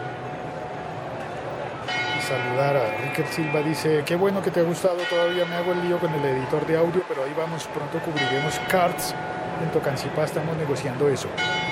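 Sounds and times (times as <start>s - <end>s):
church bells ringing at noon: 1.8s - 3.8s, 4.7s - 6.4s, 8.0s - 10.3s, 11.2s - 11.7s
speech: 2.3s - 11.6s.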